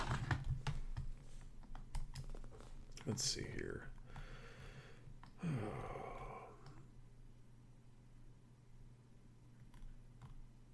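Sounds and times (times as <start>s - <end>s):
typing on a computer keyboard: 0.1s - 2.7s
speech: 3.1s - 4.0s, 5.4s - 6.1s.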